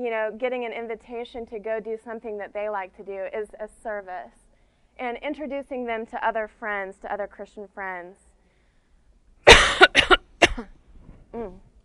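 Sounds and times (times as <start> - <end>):
speech: 0.0 - 4.4, 5.0 - 8.2, 9.6 - 11.7
breathy throat-clearing: 9.5 - 10.8
harsh raspy coughs: 9.5 - 10.8.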